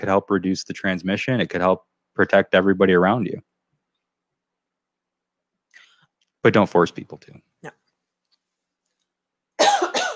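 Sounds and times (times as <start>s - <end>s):
speech: 0.0s - 3.5s, 6.4s - 7.8s
harsh coughs from something stuck in throat: 9.6s - 10.1s.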